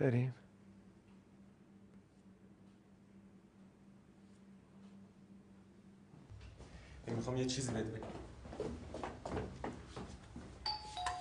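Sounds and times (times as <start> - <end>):
speech: 0.0 - 0.4, 7.1 - 9.5
neighbour's doorbell chime: 10.6 - 11.1.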